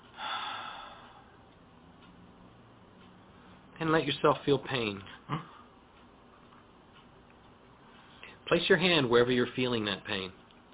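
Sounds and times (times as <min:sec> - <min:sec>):
slow deep breath in and out during a guided exercise: 0:00.1 - 0:01.4
speech: 0:03.8 - 0:05.5, 0:08.5 - 0:10.4.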